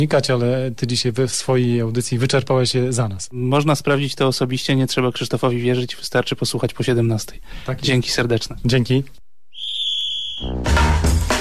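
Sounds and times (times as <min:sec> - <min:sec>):
speech: 0:00.0 - 0:09.2, 0:10.4 - 0:11.2
final whistle blast: 0:09.5 - 0:11.0.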